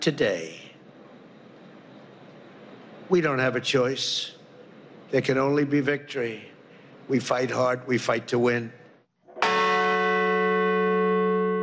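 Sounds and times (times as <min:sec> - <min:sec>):
speech: 0:00.0 - 0:00.6, 0:03.1 - 0:04.4, 0:05.1 - 0:06.5, 0:07.1 - 0:08.8
bell struck at a memorial ceremony in Shanksville, Pennsylvania: 0:09.4 - 0:11.6.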